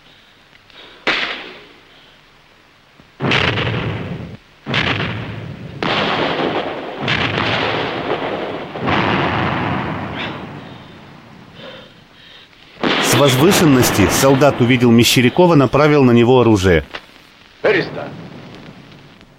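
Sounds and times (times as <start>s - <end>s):
explosions booming in a wartime battle scene from a film: 3.2s - 12.2s, 12.8s - 17.0s, 17.6s - 19.3s
speech: 13.2s - 17.0s, 17.6s - 18.2s.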